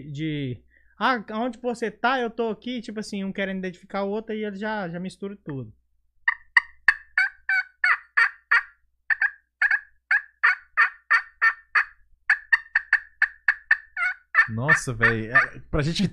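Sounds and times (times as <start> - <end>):
speech: 0.1 - 5.8, 14.5 - 16.1
turkey gobbling: 6.2 - 15.7.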